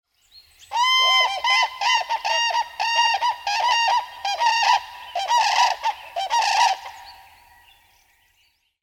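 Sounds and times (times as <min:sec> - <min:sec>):
cranes calling at a breeding territory: 0:00.7 - 0:07.3.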